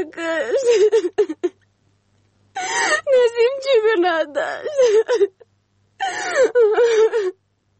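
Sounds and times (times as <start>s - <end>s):
woman wailing and crying: 0.2s - 1.5s, 2.6s - 5.4s, 6.0s - 7.7s
speech: 2.6s - 5.4s.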